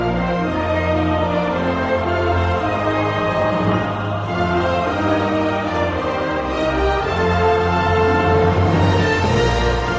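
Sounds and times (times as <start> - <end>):
theme music: 0.0 - 9.9.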